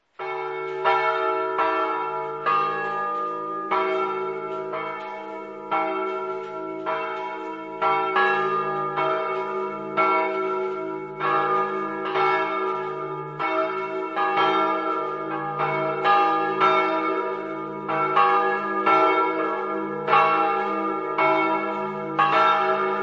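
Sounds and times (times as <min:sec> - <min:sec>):
church bells in Polcenigo: 0:00.0 - 0:23.0.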